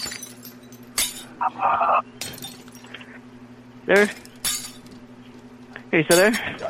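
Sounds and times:
glass mirror smashing: 0:00.0 - 0:01.4, 0:02.2 - 0:02.9, 0:04.0 - 0:05.0
glass shards tinkling: 0:00.0 - 0:01.4, 0:02.2 - 0:03.0, 0:04.0 - 0:05.0, 0:06.1 - 0:06.6
low steady hum: 0:00.0 - 0:06.6
speech: 0:01.4 - 0:02.4, 0:03.9 - 0:04.3, 0:05.9 - 0:06.6.

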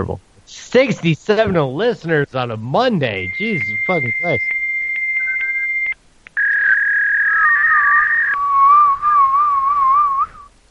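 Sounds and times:
speech: 0:00.0 - 0:04.6
person attempting to whistle: 0:03.3 - 0:10.5.

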